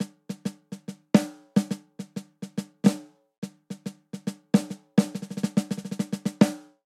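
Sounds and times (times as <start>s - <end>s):
swing jazz snare drum pattern: 0.0s - 6.8s.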